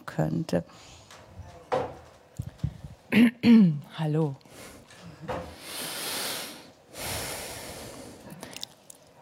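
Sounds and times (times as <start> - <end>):
speech: 0.2 - 1.0, 3.1 - 5.4
barefoot footsteps walking through an apartment: 1.1 - 3.0
long airy breaths: 5.5 - 8.7.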